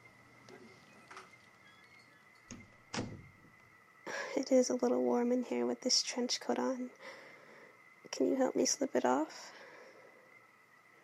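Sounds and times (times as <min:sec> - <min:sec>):
faint steady whine: 0:00.0 - 0:11.0
office door being closed: 0:00.5 - 0:03.6
speech: 0:04.4 - 0:07.2, 0:08.2 - 0:09.6.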